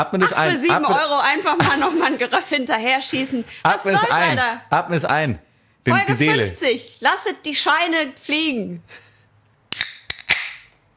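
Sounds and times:
laughter: 0.0 - 2.6
speech: 0.0 - 9.0
fresh can of stout beer being opened: 9.7 - 10.7.

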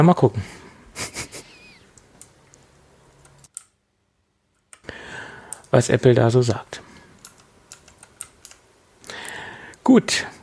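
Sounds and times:
speech: 0.0 - 1.2, 5.7 - 6.9, 9.9 - 10.4
laptop keyboard key presses: 7.2 - 8.6.

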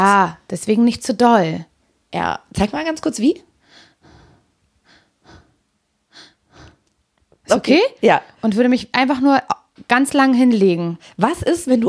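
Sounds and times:
speech: 0.0 - 3.5, 7.5 - 11.8
person taking quick shallow breaths: 3.6 - 7.0.

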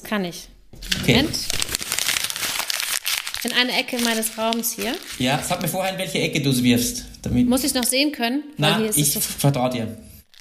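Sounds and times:
speech: 0.0 - 1.6, 3.4 - 10.1
sheet of paper being crumpled: 0.8 - 5.9.

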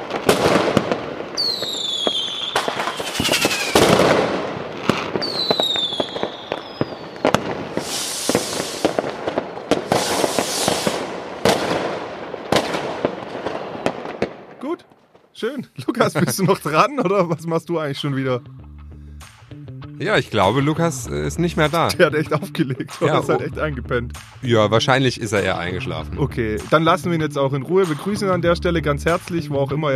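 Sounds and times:
whistling rockets streaking upward: 0.0 - 14.6
fireworks display crackling bursts and sharp bangs: 0.0 - 16.8, 27.8 - 28.4
speech: 15.5 - 18.6, 20.0 - 29.9
laughter: 15.6 - 18.0, 21.4 - 26.7.

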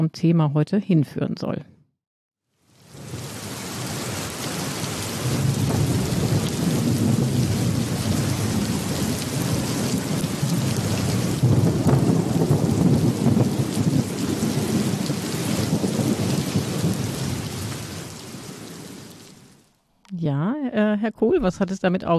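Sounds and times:
speech: 0.0 - 1.7, 20.3 - 22.1
heavy downpour of rain: 2.7 - 19.6
deep rumbling thunder: 2.9 - 19.0.

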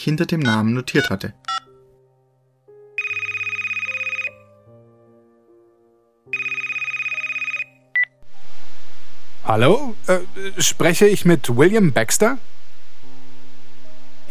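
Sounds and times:
speech: 0.0 - 1.5, 9.5 - 12.5
loud electronic mobile phone ringing: 0.5 - 1.7, 3.0 - 4.4, 6.3 - 8.2
old-fashioned mobile phone key tones dialing: 3.0 - 4.3, 6.4 - 8.1.

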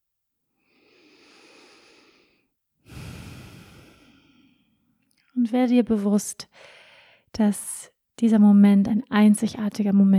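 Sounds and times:
slow deep breathing during a guided meditation: 0.6 - 4.9, 6.5 - 7.2
speech: 5.4 - 10.1.

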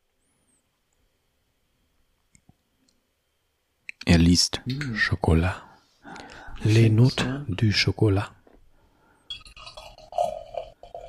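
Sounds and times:
speech: 4.2 - 5.7, 6.6 - 8.4
freshly opened drink poured into a glass: 9.3 - 11.0.

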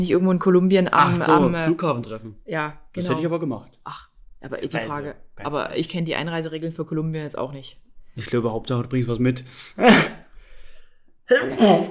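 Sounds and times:
speech: 0.0 - 10.2, 11.3 - 11.8
loud breathy sneezes: 9.8 - 10.3, 11.3 - 11.8.

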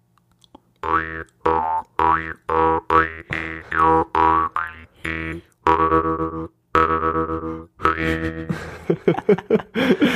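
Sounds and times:
speech: 0.8 - 4.0
jaw harp twanging: 0.8 - 8.4
laughter: 8.1 - 10.1.

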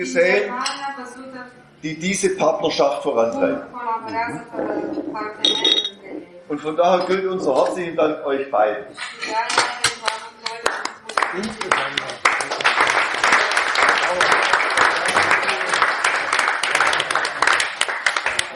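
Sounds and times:
speech: 0.0 - 5.9, 6.5 - 9.8, 11.3 - 12.0
crowd applause: 10.6 - 18.5.

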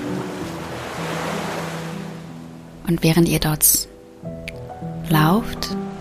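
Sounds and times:
ocean waves washing on a beach: 0.0 - 2.8
speech: 2.9 - 3.9, 5.1 - 5.8.

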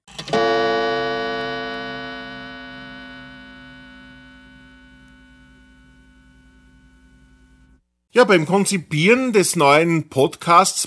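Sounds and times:
gong strike transition jingle: 0.8 - 6.1
speech: 8.2 - 10.8.

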